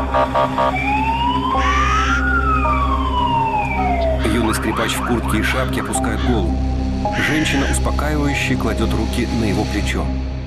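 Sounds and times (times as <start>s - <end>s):
ambulance siren as the ambulance drives away: 0.0s - 7.9s
speech: 0.1s - 1.6s, 4.4s - 10.2s.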